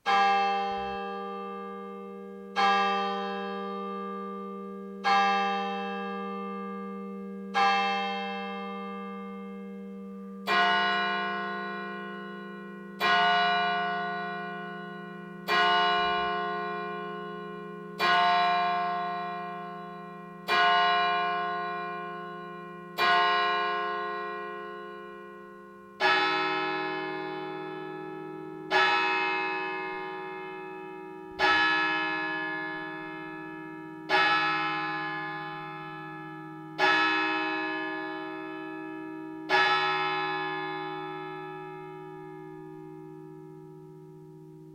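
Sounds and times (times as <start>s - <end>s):
church bell ringing at six o'clock in Neenstetten: 0.0s - 44.7s.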